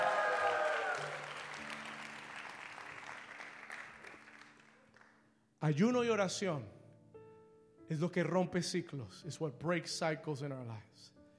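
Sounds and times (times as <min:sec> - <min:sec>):
audience clapping loudly: 0:00.0 - 0:05.2
speech: 0:05.6 - 0:06.8, 0:07.9 - 0:11.2.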